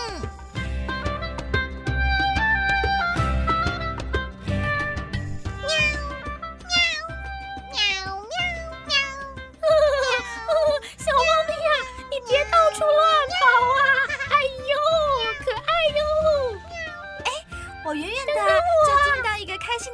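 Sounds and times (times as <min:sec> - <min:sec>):
gentle music: 0:00.0 - 0:19.9
kitten meowing: 0:05.6 - 0:17.7.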